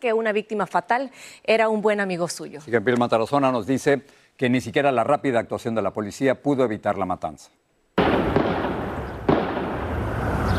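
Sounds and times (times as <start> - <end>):
speech: 0.0 - 8.2
gunshots during a bank shooting: 8.0 - 10.3.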